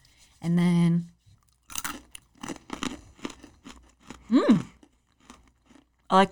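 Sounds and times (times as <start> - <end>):
speech: 0.4 - 1.1, 6.1 - 6.3
crunching on crunchy spicy snack peas: 1.4 - 6.3.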